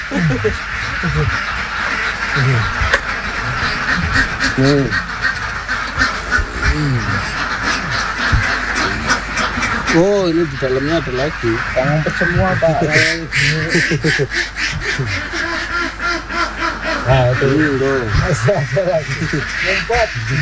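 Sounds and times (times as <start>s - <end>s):
crowd of ducks quacking in a pen: 0.0s - 20.4s
laughter: 0.0s - 20.4s
steady broadband hiss: 0.0s - 20.4s
speech: 0.1s - 1.6s, 2.3s - 2.9s, 4.5s - 5.2s, 6.8s - 7.4s, 9.9s - 15.2s, 17.1s - 20.4s.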